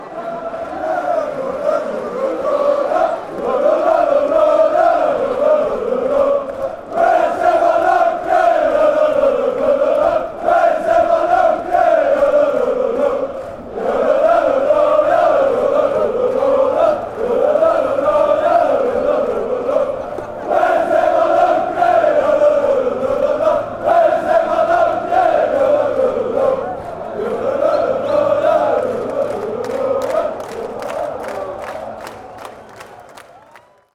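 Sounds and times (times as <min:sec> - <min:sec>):
fans chanting lololololo: 0:00.0 - 0:33.0.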